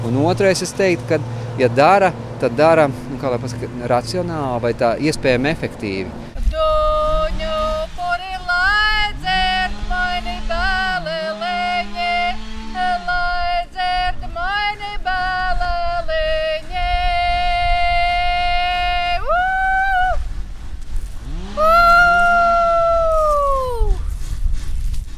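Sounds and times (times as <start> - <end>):
speech: 0.1 - 6.2
saws running during a volunteer work day clearing the surroundings in Latvia: 6.4 - 15.0, 20.2 - 24.4
women of a traditional singing group singing high calling notes: 6.4 - 20.2.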